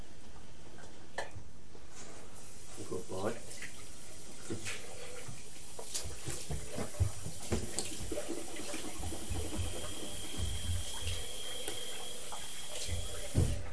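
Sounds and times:
water running from a sink tap: 2.4s - 13.7s.

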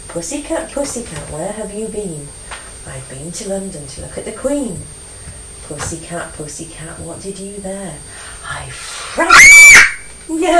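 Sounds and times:
speech: 0.1s - 5.0s, 5.7s - 10.5s
child screaming: 9.2s - 10.5s.

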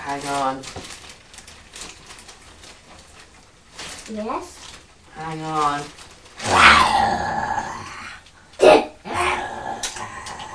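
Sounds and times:
speech: 0.1s - 0.9s, 4.1s - 4.6s, 5.2s - 6.0s, 6.7s - 7.5s
person imitating a rumbling lion growl: 6.4s - 8.3s, 9.0s - 10.5s
person playfully imitating a lion roar: 6.4s - 10.5s.

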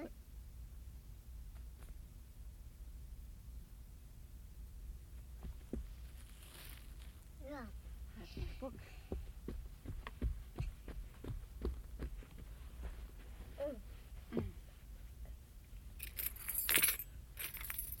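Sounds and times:
low hum: 0.0s - 17.9s
keys jingling on a key ring: 16.0s - 17.9s.

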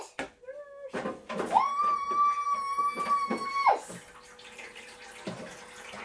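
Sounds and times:
water running from a tap to make jelly: 2.2s - 6.0s.

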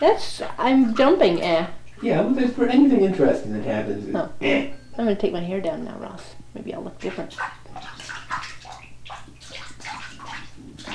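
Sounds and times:
child splashing water in bathtub: 0.0s - 3.3s, 7.0s - 10.9s
speech: 0.0s - 8.5s.

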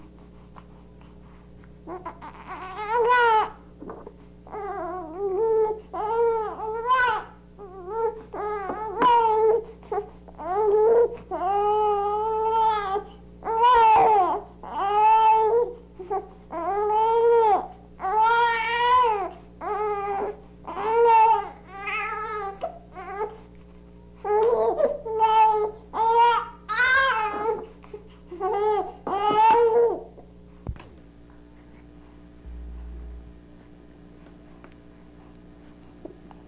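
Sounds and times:
baby boy crying and howling: 1.9s - 3.6s, 4.5s - 9.6s, 10.4s - 23.3s, 24.3s - 27.6s, 28.4s - 30.1s.

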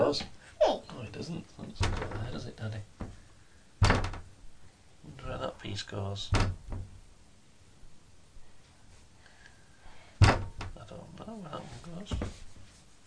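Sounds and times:
speech: 0.1s - 0.3s, 5.8s - 6.6s, 11.9s - 12.3s
head bumping against a door: 1.7s - 4.4s, 6.3s - 7.0s, 10.2s - 10.9s, 12.0s - 12.5s.

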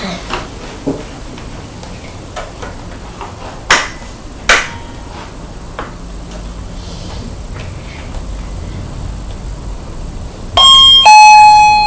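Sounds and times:
two-note doorbell chime: 10.6s - 11.8s.

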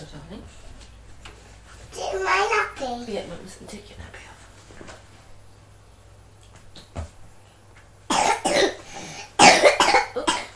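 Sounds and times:
speech: 2.9s - 4.2s
small child in a nappy harsh wet coughing: 8.1s - 10.5s.

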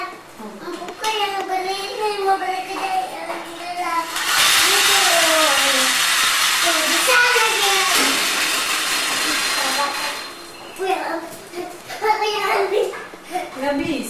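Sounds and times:
children talking: 0.0s - 14.0s
small battery-powered toy car motor whirring: 3.9s - 10.5s.

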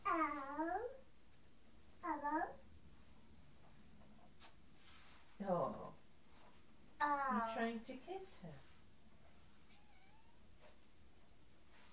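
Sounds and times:
steady hiss: 0.0s - 11.9s
speech: 7.6s - 8.7s
single soft cat meow: 9.7s - 10.4s.

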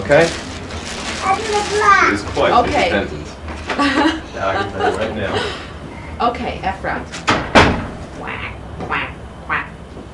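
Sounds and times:
speech: 0.1s - 0.5s, 1.3s - 5.6s, 6.2s - 7.3s
laughter: 3.8s - 5.7s
toy duck quacking: 8.2s - 9.8s.

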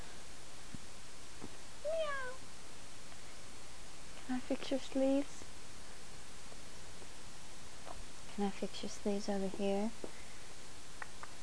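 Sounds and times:
steady low hiss: 0.0s - 11.4s
female cat meowing: 1.9s - 2.4s
speech: 4.3s - 5.5s, 8.4s - 10.1s.

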